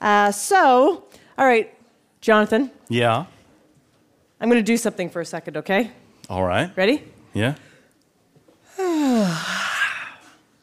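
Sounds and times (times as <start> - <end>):
speech: 0.0 - 3.4, 4.4 - 7.7, 9.0 - 9.6
person yawning: 8.7 - 10.4.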